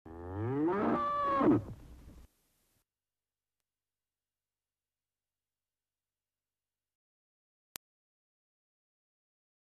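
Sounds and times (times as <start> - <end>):
cow giving a long deep moo: 0.1 - 1.7.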